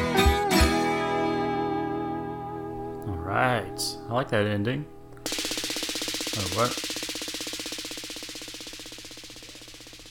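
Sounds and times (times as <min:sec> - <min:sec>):
music: 0:00.0 - 0:05.2
speech: 0:03.3 - 0:05.4, 0:06.4 - 0:06.9
rapid burst of machine-gun fire: 0:05.3 - 0:10.0.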